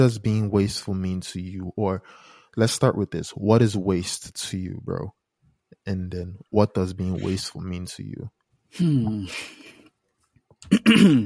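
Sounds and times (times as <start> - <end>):
speech: 0.0 - 5.2, 5.8 - 9.7, 10.6 - 11.2
person clearing throat: 10.6 - 11.2.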